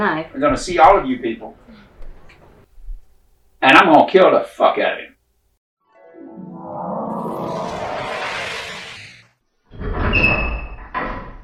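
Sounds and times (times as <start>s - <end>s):
speech: 0.0s - 1.6s, 3.6s - 5.1s
heavy doors creaking open: 7.2s - 11.4s.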